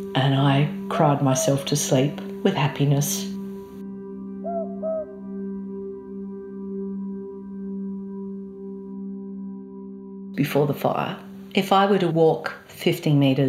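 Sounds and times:
speech: 0.0 - 3.3, 10.4 - 13.4
southern boobook owl two-note call: 4.4 - 5.2.

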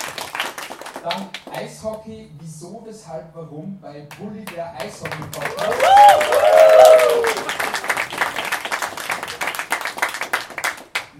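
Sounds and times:
audience applauding at a live award show: 0.0 - 2.0, 4.1 - 11.1
speech: 1.0 - 6.4
whoop or cheer: 5.5 - 7.6.

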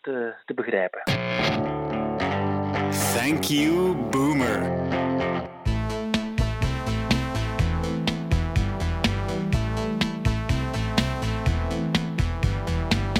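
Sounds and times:
speech: 0.0 - 1.6, 2.9 - 5.5
instrumental electronic synth-pop song with mechanical beat and synthesizer bass: 2.9 - 13.1.

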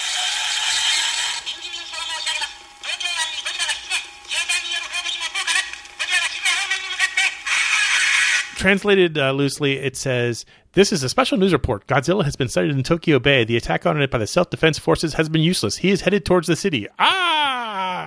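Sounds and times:
whirring ratcheting pull-string doll mechanism: 0.0 - 8.6
scratchy tinny recorded voice of a pull-string doll: 1.1 - 8.6
speech: 8.6 - 17.3.

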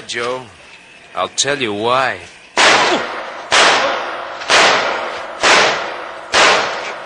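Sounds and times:
speech: 0.1 - 3.1
gunshots: 2.6 - 7.0.

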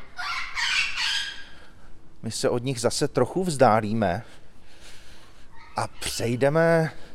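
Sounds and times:
Amazon parrots squawking: 0.0 - 1.6
quiet noise: 0.0 - 7.1
speech: 2.2 - 4.4, 5.8 - 7.0.

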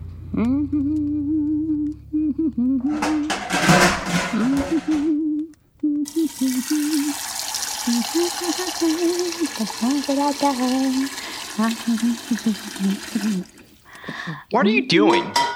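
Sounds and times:
speech: 0.3 - 5.3, 6.3 - 15.4
water pouring from a tap into a pot: 6.1 - 14.5.

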